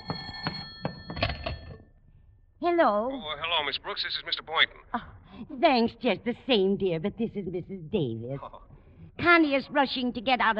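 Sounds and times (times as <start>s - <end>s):
telephone bell ringing: 0.0s - 1.8s
speech: 2.6s - 10.5s.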